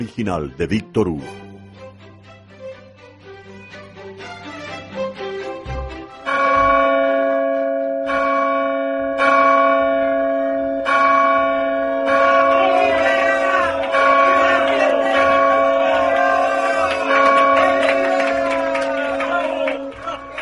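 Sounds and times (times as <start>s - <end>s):
speech: 0.0s - 1.4s
church bells pealing: 6.3s - 20.4s.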